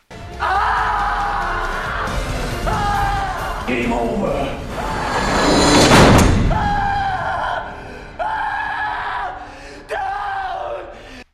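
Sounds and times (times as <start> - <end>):
man screaming in film: 0.4 - 3.7, 6.4 - 11.0
heavy door slamming in film: 4.6 - 7.9.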